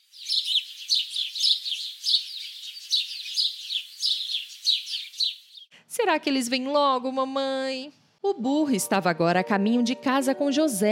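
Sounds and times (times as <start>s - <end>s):
baby birds chirping in nests: 0.0s - 5.7s
speech: 6.0s - 10.9s.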